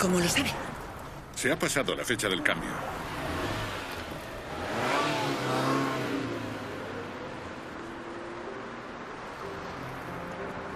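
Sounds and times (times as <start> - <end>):
speech: 0.0 - 0.8, 1.4 - 3.0
road noise: 0.0 - 10.7
car engine revving while driving: 2.1 - 9.0.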